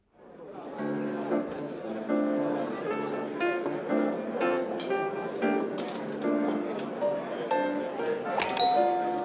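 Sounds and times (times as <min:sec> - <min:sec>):
murmur of chatter in a busy fine restaurant: 0:00.1 - 0:09.2
gentle piano melody in a busy fine restaurant: 0:00.5 - 0:09.2
glasses clinking: 0:08.4 - 0:09.2.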